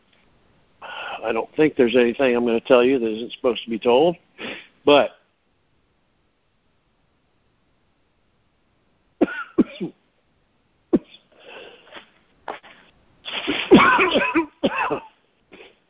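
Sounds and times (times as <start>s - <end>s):
speech: 1.2s - 4.2s, 4.8s - 5.2s
person coughing: 9.2s - 10.0s, 11.0s - 11.3s, 13.3s - 15.8s
throat clearing: 11.0s - 11.3s, 11.9s - 15.8s.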